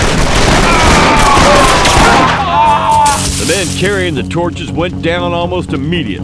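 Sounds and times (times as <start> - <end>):
dense gunfire volley in an ambush: 0.0 - 2.5
speech: 3.5 - 6.2.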